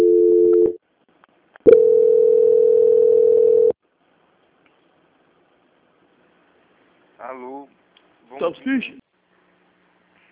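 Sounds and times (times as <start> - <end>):
telephone call transfer tone: 0.0 - 0.8, 1.7 - 3.8
speech: 8.4 - 9.0.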